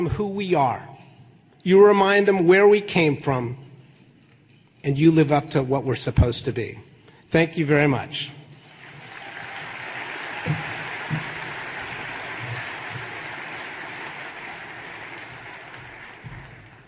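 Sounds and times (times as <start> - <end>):
speech: 0.0 - 0.9, 1.6 - 3.6, 4.8 - 8.4
crowd applauding after a speech at an economic forecast event: 8.6 - 16.8
louder claps or thumps: 10.2 - 13.6, 15.2 - 16.8.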